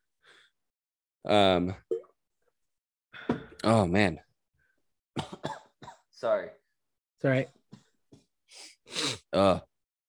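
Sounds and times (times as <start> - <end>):
speech: 1.2 - 1.8, 3.6 - 4.3, 5.2 - 5.6, 6.2 - 6.6, 7.2 - 7.6, 8.5 - 9.7
harsh throaty coughing: 5.2 - 6.1.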